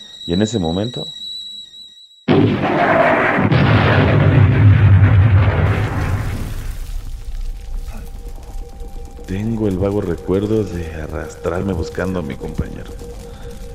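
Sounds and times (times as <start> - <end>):
speech: 0.2 - 1.2, 9.3 - 13.2
loud explosion: 2.3 - 8.2
debris-like crackle: 2.3 - 13.7
heavy deep rumble: 2.3 - 13.7.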